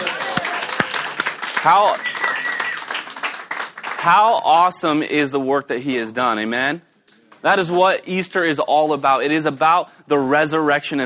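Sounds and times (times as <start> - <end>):
scattered cheers and whooping voices: 0.0 - 3.1
audience applause at a church service: 0.0 - 4.3
speech: 1.6 - 2.2, 4.0 - 11.0.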